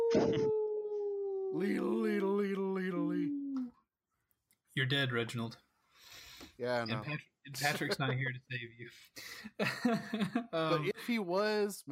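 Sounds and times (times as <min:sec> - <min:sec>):
person imitating a wolf howling: 0:00.0 - 0:03.7
speech: 0:01.5 - 0:03.4, 0:04.8 - 0:05.6, 0:06.5 - 0:11.8
laughter: 0:09.6 - 0:10.6.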